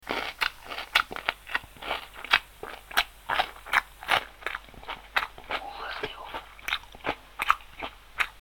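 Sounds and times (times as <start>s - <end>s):
smacking lips: 0.1s - 8.3s.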